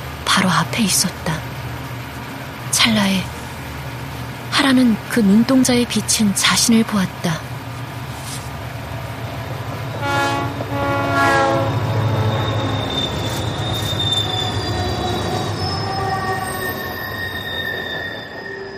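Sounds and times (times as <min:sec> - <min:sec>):
approaching train rumbling with a low roar: 0:00.0 - 0:18.7
speech: 0:00.4 - 0:01.4, 0:02.8 - 0:03.4, 0:04.6 - 0:07.5
harmonic train horn blast: 0:10.0 - 0:12.6
high metallic train wheel squeals: 0:11.9 - 0:18.7.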